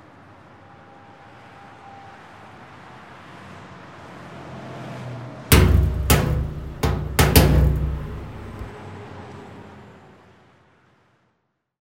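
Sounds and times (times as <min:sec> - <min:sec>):
heavy truck driving fast in the passing lane: 0:05.5 - 0:08.7
truck smashing into a road sign with metallic bangs: 0:05.5 - 0:08.7.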